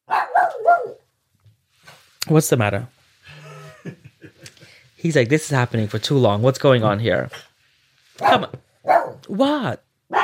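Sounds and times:
dog barking with whiny yelping tone: 0.0 - 1.1, 8.2 - 9.3
speech: 2.2 - 3.0, 5.0 - 7.5, 8.2 - 8.6, 9.3 - 9.8
laughter: 3.3 - 4.8.

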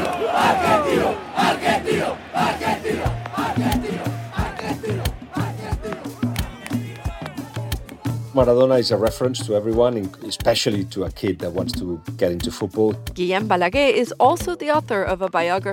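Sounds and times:
football stadium crowd chanting: 0.0 - 8.3
packed football stadium crowd roaring and cheering: 0.0 - 9.5
speech: 0.4 - 3.7, 8.4 - 15.7.

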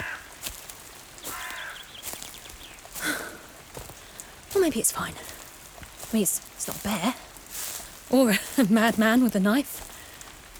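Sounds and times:
crow cawing in a forest: 0.0 - 4.3
speech: 4.6 - 5.3, 6.1 - 7.3, 8.1 - 9.8.

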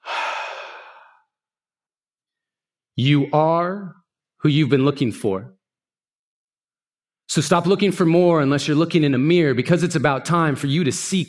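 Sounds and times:
audience breathing out deeply during a guided moment at a talk: 0.0 - 1.2
speech: 3.0 - 5.6, 7.3 - 11.2.

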